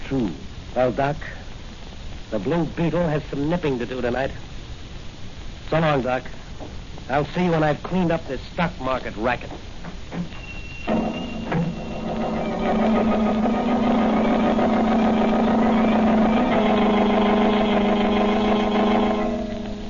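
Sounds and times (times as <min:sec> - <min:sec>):
speech: 0:00.1 - 0:01.4, 0:02.3 - 0:04.5, 0:05.7 - 0:11.1, 0:12.7 - 0:13.6
motor car engine starting and running: 0:10.9 - 0:19.8.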